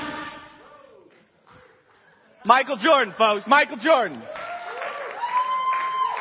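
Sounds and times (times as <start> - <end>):
speech: 2.5 - 4.4
crowd applauding: 4.2 - 6.1.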